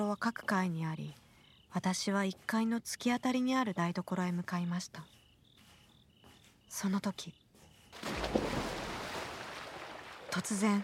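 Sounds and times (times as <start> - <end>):
speech: 0.0 - 5.2, 6.7 - 8.4, 10.3 - 10.8
loud water splash outside: 8.0 - 10.8.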